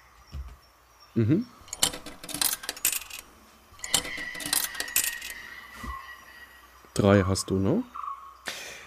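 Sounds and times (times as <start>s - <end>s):
speech: 1.2s - 1.6s, 7.0s - 8.0s
metal tokens dropping into a coin slot: 1.6s - 5.5s.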